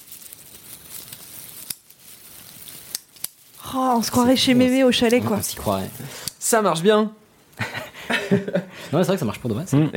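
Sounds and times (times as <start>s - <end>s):
four-color pen clicks making a crackling hiss: 0.0s - 9.1s
speech: 3.7s - 7.2s, 8.3s - 9.9s
laughter: 7.6s - 8.9s.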